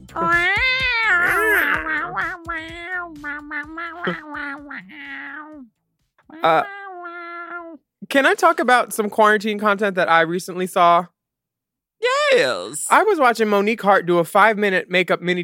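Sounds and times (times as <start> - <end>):
cat meowing: 0.1 - 5.7, 6.3 - 7.8
speech: 3.6 - 6.8, 8.1 - 11.1, 12.0 - 15.4.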